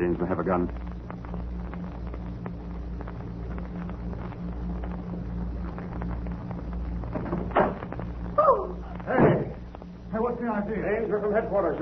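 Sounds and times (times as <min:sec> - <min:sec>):
speech: 0:00.0 - 0:01.5, 0:10.6 - 0:11.8
steady low hum: 0:00.0 - 0:11.8
creaky scrape of a door: 0:07.0 - 0:08.0.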